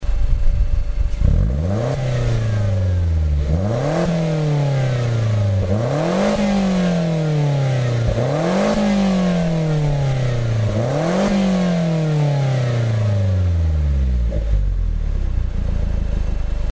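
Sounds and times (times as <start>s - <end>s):
Mazda2 Demio DJ muffler exhaust: 0.0s - 16.6s.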